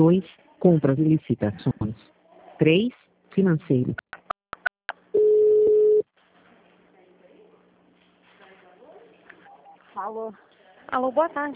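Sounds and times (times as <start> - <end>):
speech: 0.0 - 4.1, 10.0 - 11.5
steady telephone tone: 5.1 - 6.0.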